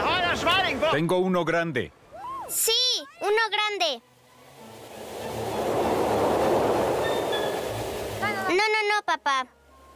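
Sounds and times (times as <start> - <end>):
speech: 0.4 - 4.7, 8.5 - 9.6
train passing near a river: 4.6 - 8.5.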